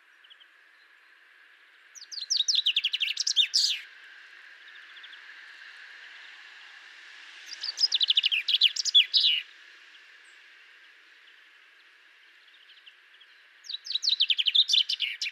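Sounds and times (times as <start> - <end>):
common chaffinch Fringilla coelebs singing: 2.0 - 3.9, 7.5 - 9.5, 12.4 - 15.3.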